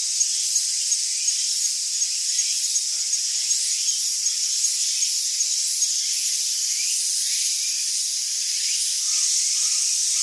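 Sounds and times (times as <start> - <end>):
insects droning in Tsumago Japan: 0.0 - 10.2.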